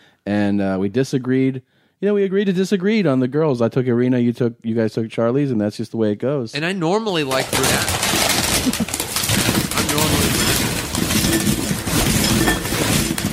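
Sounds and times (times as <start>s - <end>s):
speech: 0.2s - 9.0s
chips poured into a bowl: 7.3s - 13.2s.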